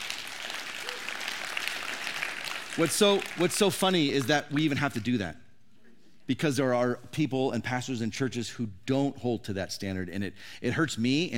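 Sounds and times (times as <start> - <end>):
audience applause at a church talk: 0.0 - 5.2
speech: 2.8 - 5.4, 6.3 - 11.3.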